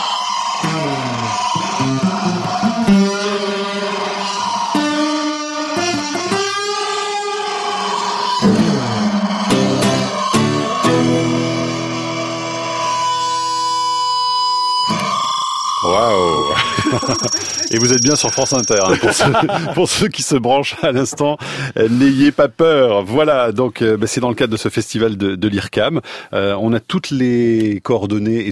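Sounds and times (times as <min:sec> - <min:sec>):
distorted electric guitar playing notes and chords: 0:00.0 - 0:19.0
laughter: 0:16.4 - 0:17.8, 0:18.8 - 0:20.0, 0:20.7 - 0:21.9
speech: 0:17.2 - 0:28.5.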